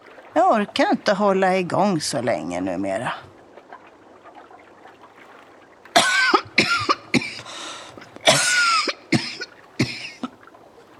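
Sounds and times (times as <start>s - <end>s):
speech: 0.4s - 3.3s
harsh strained raspy wheezy coughing: 6.0s - 10.3s.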